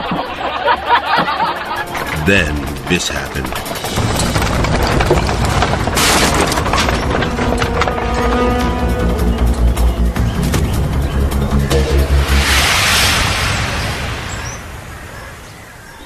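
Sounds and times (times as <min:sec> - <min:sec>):
laughter: 0:00.0 - 0:02.7
speech: 0:02.3 - 0:04.0
creaking timber: 0:03.5 - 0:10.8
rumbling wagon wheels: 0:03.6 - 0:16.0
wooden wagon front axle cracking and splintering: 0:03.7 - 0:09.6
hissing noise: 0:11.7 - 0:16.0.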